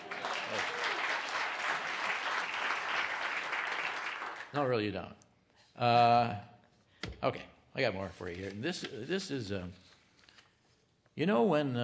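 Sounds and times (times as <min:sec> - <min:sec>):
audience applause: 0:00.0 - 0:04.5
speech: 0:04.5 - 0:05.2, 0:05.8 - 0:06.5, 0:07.2 - 0:09.9, 0:11.2 - 0:11.8.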